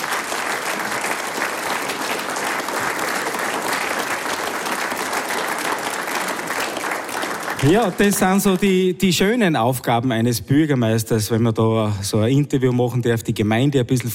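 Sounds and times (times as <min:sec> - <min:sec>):
audience applause: 0:00.0 - 0:08.9
speech: 0:07.6 - 0:14.1.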